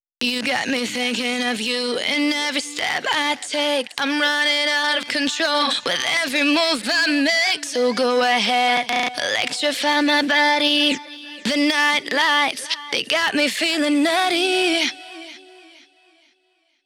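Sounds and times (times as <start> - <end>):
woman singing with wet effects: 0.2 - 16.0.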